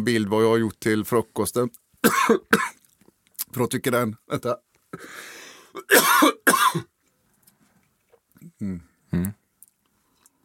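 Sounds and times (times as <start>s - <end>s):
speech: 0.0s - 2.8s, 3.5s - 6.9s, 8.6s - 9.4s
person coughing: 2.1s - 2.8s, 5.7s - 6.9s.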